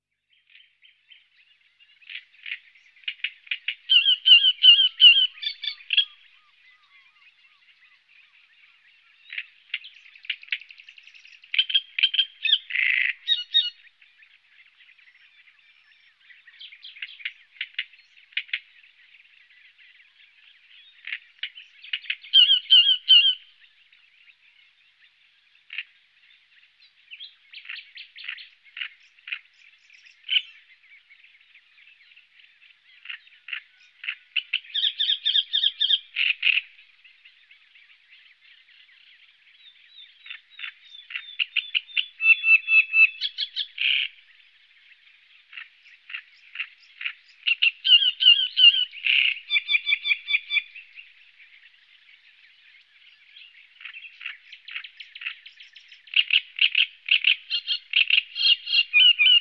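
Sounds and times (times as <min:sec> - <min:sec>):
great reed warbler: 0:00.2 - 0:59.3.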